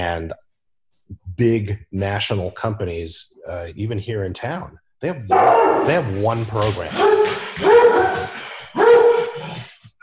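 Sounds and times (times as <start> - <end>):
speech: 0.0 - 0.4, 1.1 - 7.8
dog giving drawn-out whining barks: 5.3 - 6.1, 6.9 - 9.6.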